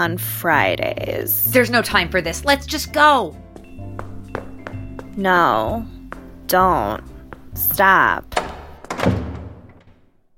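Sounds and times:
speech: 0.0 - 3.4, 5.2 - 8.4
door slamming shut: 8.3 - 10.3.

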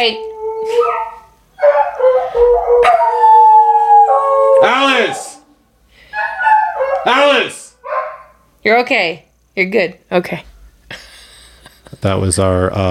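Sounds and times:
speech: 0.0 - 3.2, 4.6 - 5.4, 7.0 - 7.6, 8.6 - 11.1, 12.0 - 12.8
dogs howling along with a ringing phone: 0.0 - 8.4.

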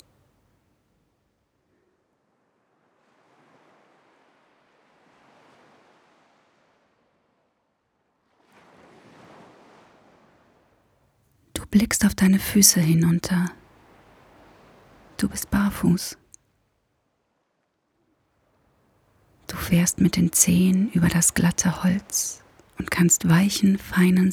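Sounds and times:
ocean waves rolling onto a beach: 2.1 - 11.1, 11.8 - 16.2, 18.4 - 24.3
speech: 11.7 - 13.6, 15.2 - 16.2, 19.5 - 24.3.

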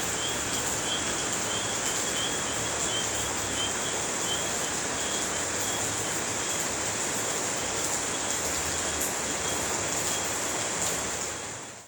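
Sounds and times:
steady dense rain falling at night: 0.0 - 11.8.

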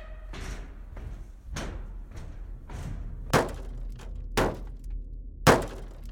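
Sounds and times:
heavy thumps on a hollow metal truck roof from someone climbing: 3.4 - 4.9, 5.5 - 6.1.

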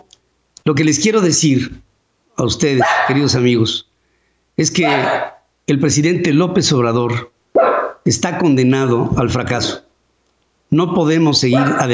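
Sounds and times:
speech: 0.7 - 3.9, 4.6 - 7.3, 8.0 - 9.9, 10.7 - 11.9
dogs barking: 2.8 - 3.3, 4.8 - 5.4, 7.6 - 8.0, 11.5 - 11.9.

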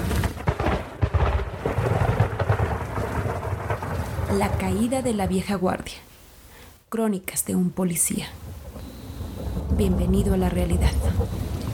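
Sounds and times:
deep rumbling thunder during a rainstorm: 0.0 - 6.0, 7.9 - 11.7
steady hissing rain: 1.6 - 6.9, 8.0 - 11.7
speech: 4.3 - 6.1, 6.9 - 8.4, 9.8 - 11.5.

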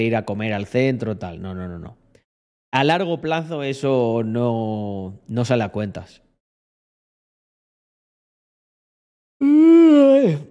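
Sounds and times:
speech: 0.0 - 2.0, 2.7 - 6.2, 9.4 - 10.4
person yawning: 9.4 - 10.4.

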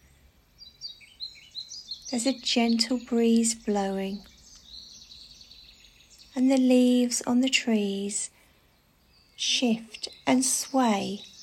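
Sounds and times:
birds chirping and trilling in a forest: 0.0 - 11.4
speech: 2.1 - 4.3, 6.4 - 8.4, 9.4 - 11.3.

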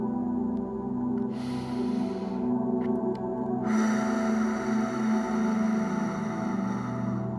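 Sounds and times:
steady low droning musical hum: 0.0 - 7.3
slow deep breaths in and out: 1.2 - 2.8, 3.5 - 7.3.

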